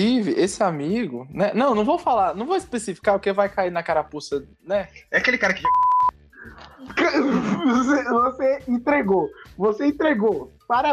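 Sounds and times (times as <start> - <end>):
speech: 0.0 - 5.9, 6.9 - 10.9
high-pitched censor bleep over a spoken name: 5.6 - 6.2
laughter: 6.4 - 8.3.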